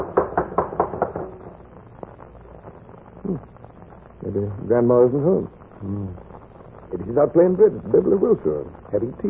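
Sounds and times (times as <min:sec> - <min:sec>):
knocking on the door of a house: 0:00.0 - 0:01.4
speech: 0:04.4 - 0:06.3, 0:06.9 - 0:09.2
faint vocal sound: 0:05.3 - 0:06.4.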